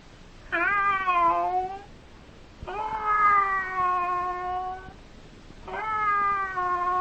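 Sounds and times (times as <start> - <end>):
cat meowing: 0.5 - 1.9, 2.7 - 5.0, 5.7 - 6.9.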